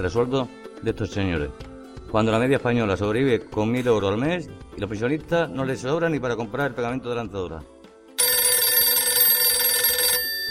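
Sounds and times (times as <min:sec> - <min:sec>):
speech: 0:00.0 - 0:07.7
telephone ringing with an incoming call: 0:08.2 - 0:10.5.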